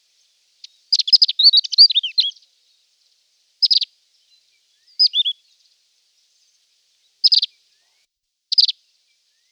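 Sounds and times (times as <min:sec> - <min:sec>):
Reunion olive white-eye singing a twittering phrase: 0:00.9 - 0:02.4, 0:07.2 - 0:07.5.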